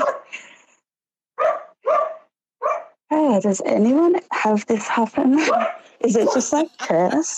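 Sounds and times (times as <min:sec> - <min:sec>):
pet dog barking: 0:00.0 - 0:00.3, 0:01.4 - 0:03.0, 0:05.4 - 0:06.6
speech: 0:03.3 - 0:07.3.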